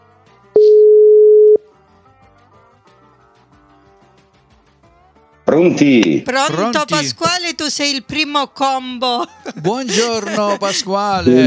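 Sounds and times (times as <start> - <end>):
telephone line tone while a call is being placed: 0.6 - 1.7
speech: 5.6 - 11.4
laughter: 9.0 - 11.4.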